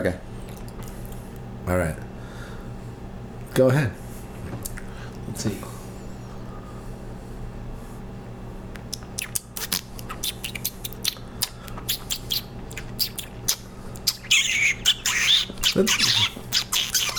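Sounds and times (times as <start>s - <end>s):
speech: 0.0s - 0.3s, 1.7s - 2.1s, 3.6s - 4.0s, 5.3s - 5.7s, 15.8s - 16.2s
person imitating a chickadee call with their mouth: 11.9s - 17.1s.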